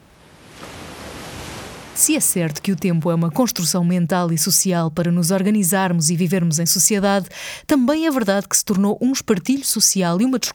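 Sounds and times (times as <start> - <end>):
sea wave breaking on shore: 0.0 - 2.6
speech: 2.0 - 10.5.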